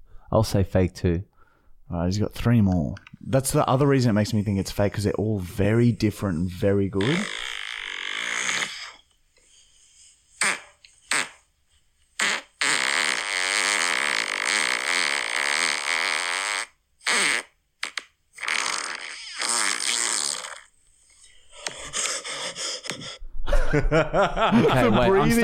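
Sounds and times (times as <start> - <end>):
speech: 0.3 - 1.3, 1.9 - 7.4, 23.8 - 25.4
man making fart sounds by blowing against skin: 7.0 - 9.0, 10.4 - 11.5, 12.2 - 20.8
laughter: 23.5 - 25.4.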